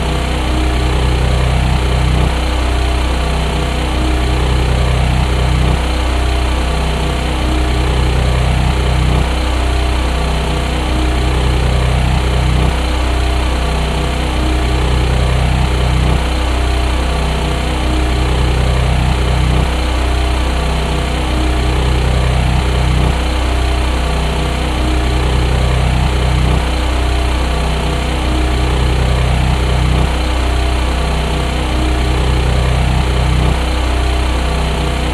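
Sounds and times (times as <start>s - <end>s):
portable gasoline generator engine drone: 0.0s - 35.1s.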